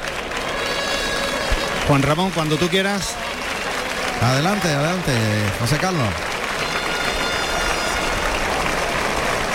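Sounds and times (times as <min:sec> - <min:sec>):
bullring crowd clapping an ovation: 0:00.0 - 0:09.5
speech: 0:01.9 - 0:03.4, 0:04.2 - 0:06.3.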